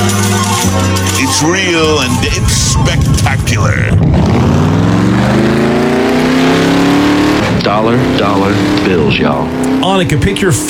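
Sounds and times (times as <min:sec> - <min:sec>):
V8 muscle car engine revving and accelerating: 0:00.0 - 0:10.6
speech: 0:01.4 - 0:06.0, 0:07.7 - 0:10.6.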